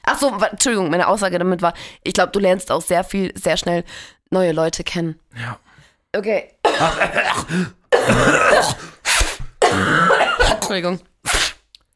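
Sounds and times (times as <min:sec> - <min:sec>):
speech: 0:00.2 - 0:09.0, 0:09.8 - 0:11.4
person coughing: 0:06.7 - 0:10.9.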